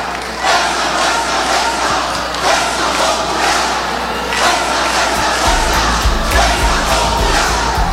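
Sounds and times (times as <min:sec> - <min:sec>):
legislators chanting a slogan in parliament: 0:00.0 - 0:07.9.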